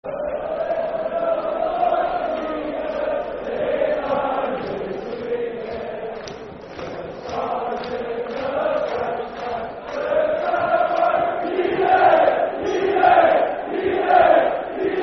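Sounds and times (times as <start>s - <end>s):
Northern Ireland football crowd chanting: 0.1s - 15.0s.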